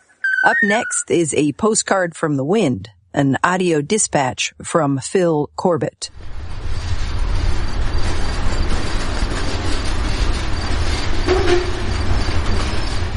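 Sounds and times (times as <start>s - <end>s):
speech: 0.4s - 6.4s
freight train rumbling past with rattling cars: 6.1s - 13.1s
brief metallic squeal: 11.2s - 13.0s.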